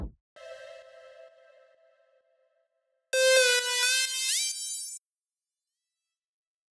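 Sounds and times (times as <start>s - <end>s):
synth harmony: 0.4s - 2.3s, 3.1s - 4.5s.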